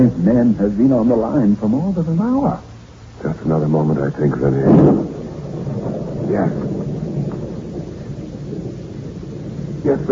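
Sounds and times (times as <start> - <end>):
speech: 0.0 - 5.2, 6.3 - 7.3, 9.8 - 10.0
crackling of thunder: 0.0 - 10.0
low continuous rumble of thunder: 0.0 - 10.0
steady rain: 0.0 - 10.0.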